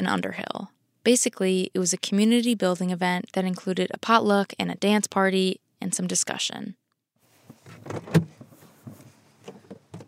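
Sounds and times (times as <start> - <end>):
speech: 0.0 - 6.8, 7.8 - 8.4
shuffling movement of someone climbing out of a car: 7.3 - 10.0
solid car door thunk: 7.6 - 10.0.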